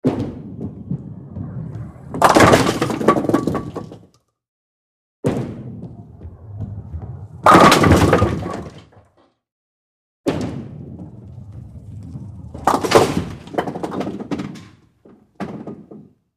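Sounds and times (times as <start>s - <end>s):
bowling ball rolling down lane: 0.2s - 4.0s, 5.5s - 9.0s, 10.4s - 16.1s.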